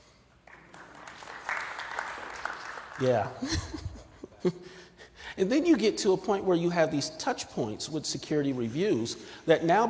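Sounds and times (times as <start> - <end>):
audience applause: 0.4 - 3.4
laughter: 3.0 - 5.2
speech: 3.0 - 9.8.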